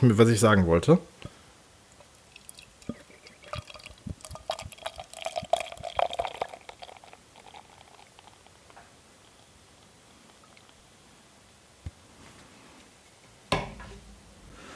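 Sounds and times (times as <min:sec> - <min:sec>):
speech: 0:00.0 - 0:01.4
beer fizzing in a glass: 0:01.9 - 0:10.8
reddish beer from a freshly opened can pouring into a glass: 0:02.0 - 0:09.5.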